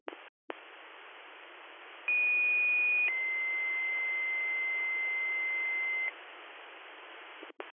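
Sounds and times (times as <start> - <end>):
radio static hiss: 0.1 - 7.7
fire dispatch radio alarm tones: 2.1 - 6.1.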